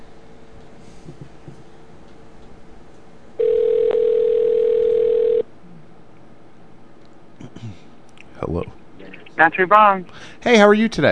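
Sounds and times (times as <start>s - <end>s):
telephone ringback tone: 3.4s - 5.4s
speech: 9.4s - 11.1s.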